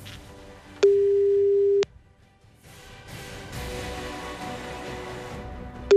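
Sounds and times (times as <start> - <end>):
telephone call tone: 0.8 - 1.9.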